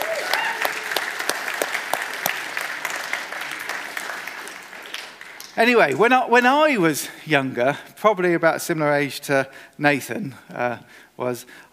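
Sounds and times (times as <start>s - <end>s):
audience applauding after a performance of drums, piano and singing: 0.0s - 6.0s
speech: 5.6s - 11.7s.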